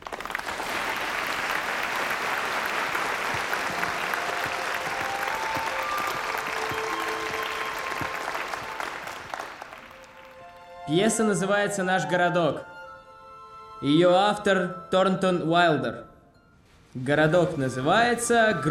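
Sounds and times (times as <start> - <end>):
whole theatre audience standing and applauding: 0.0 - 10.6
speech: 10.9 - 12.7, 13.8 - 16.1, 17.0 - 18.7.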